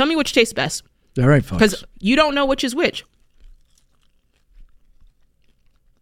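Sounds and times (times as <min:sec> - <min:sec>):
speech: 0:00.0 - 0:03.1
chewing and crunching crisp food: 0:02.2 - 0:06.0.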